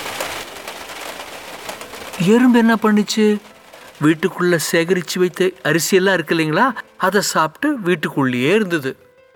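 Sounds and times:
steady rain: 0.0s - 9.0s
speech: 2.2s - 9.1s.

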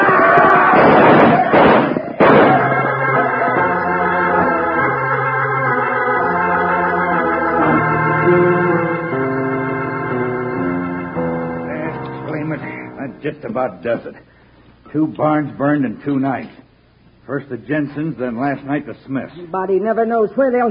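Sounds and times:
music: 0.0s - 14.1s
gunfire in a radio drama: 0.7s - 3.0s
speech: 13.4s - 16.6s, 17.3s - 20.7s.

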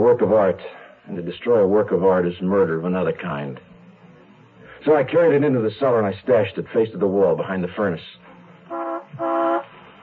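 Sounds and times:
speech: 0.0s - 3.7s, 4.8s - 9.5s
school bus horn honking: 8.7s - 9.9s.

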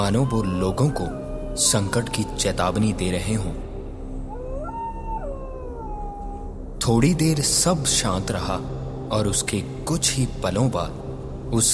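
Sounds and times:
dogs howling: 0.0s - 3.6s, 4.2s - 6.8s
speech: 0.0s - 3.7s, 6.8s - 11.7s.

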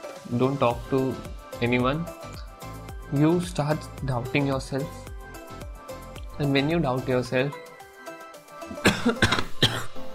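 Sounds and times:
speech: 0.3s - 2.3s, 3.1s - 5.0s, 6.4s - 7.6s, 9.0s - 9.5s
person coughing: 8.7s - 10.0s.

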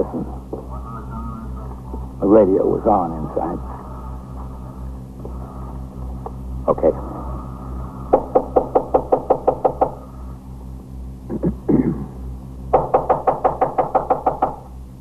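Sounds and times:
low hum: 0.0s - 14.9s
speech: 2.2s - 3.8s, 6.7s - 7.2s
police officers knocking on a fourth-floor rear apartment door: 8.1s - 10.0s, 12.7s - 14.7s.

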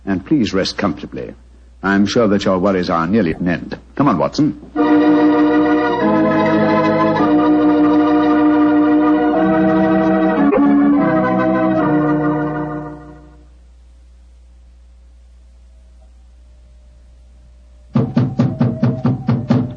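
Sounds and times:
speech: 0.3s - 5.2s
music: 4.8s - 13.6s, 15.7s - 19.7s
knocking on the wooden door of an elephant house: 18.0s - 19.7s.

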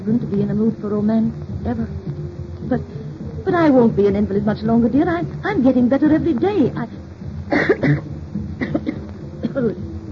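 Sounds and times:
speech: 0.0s - 2.1s, 2.7s - 8.1s, 9.6s - 9.8s
harsh raspy coughing fit: 7.5s - 9.8s.

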